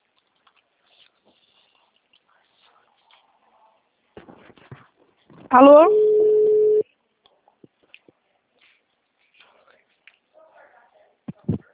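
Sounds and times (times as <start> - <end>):
speech: 5.5 - 6.0
busy signal tone from a dropped phone call: 5.8 - 6.8.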